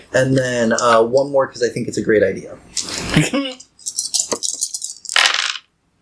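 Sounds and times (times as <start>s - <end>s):
speech: 0.1s - 3.6s
dice clattering and rattling across a hard surface: 3.8s - 5.7s.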